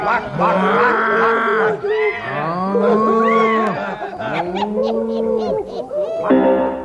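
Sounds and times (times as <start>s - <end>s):
laughter: 0.0s - 6.6s
cow mooing and bellowing: 0.3s - 5.4s.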